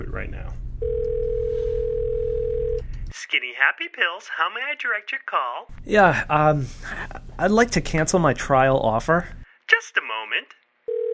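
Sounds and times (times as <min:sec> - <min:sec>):
telephone dial tone at the start of a recorded phone call: 0:00.8 - 0:02.9, 0:10.9 - 0:11.1
speech: 0:03.4 - 0:10.6.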